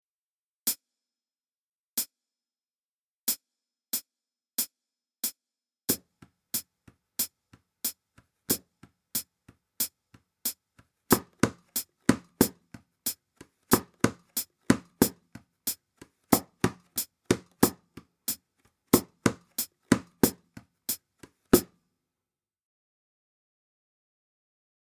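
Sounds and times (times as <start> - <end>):
hand to hand percussion: 11.1 - 12.8, 13.7 - 15.2, 16.3 - 18.0, 19.0 - 20.6.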